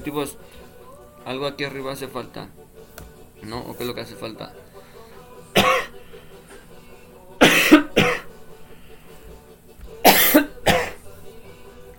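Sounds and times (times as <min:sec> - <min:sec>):
speech: 0:00.0 - 0:02.8, 0:03.4 - 0:04.7
man coughing hard in a fit: 0:05.6 - 0:06.0, 0:07.4 - 0:08.4, 0:10.0 - 0:11.0.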